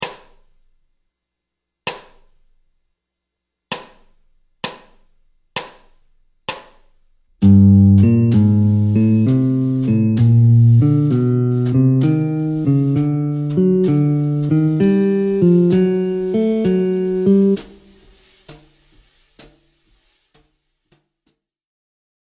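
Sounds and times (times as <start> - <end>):
jazz guitar playing bebop scale ascending in G harmonic minor: 7.4 - 18.0.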